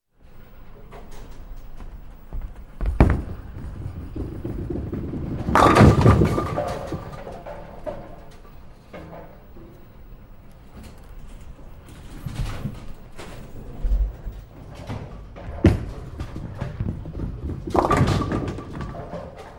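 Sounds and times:
bowling pins strike: 2.8s - 9.6s, 13.9s - 19.5s.

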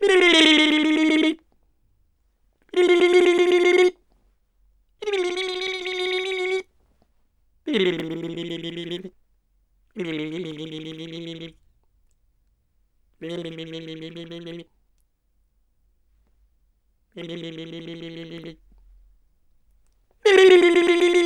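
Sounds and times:
tongue teasing sounds: 0.0s - 1.4s, 2.7s - 4.0s, 5.0s - 6.7s, 7.7s - 9.1s, 10.0s - 11.6s, 13.2s - 14.7s, 17.2s - 18.7s, 20.3s - 21.2s.

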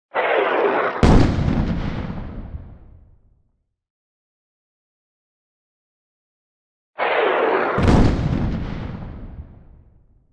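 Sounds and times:
artillery shell: 0.1s - 3.1s, 7.0s - 10.1s.

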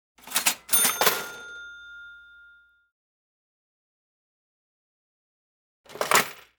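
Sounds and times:
cash register: 0.2s - 2.7s, 5.9s - 6.5s.

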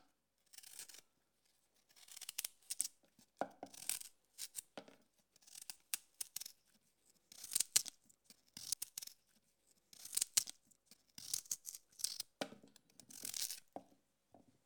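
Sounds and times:
potatoes being peeled: 1.8s - 4.7s, 5.4s - 13.7s.

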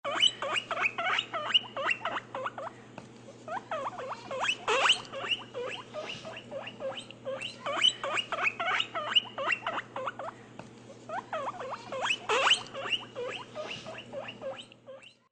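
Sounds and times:
guinea pig: 0.0s - 15.2s.

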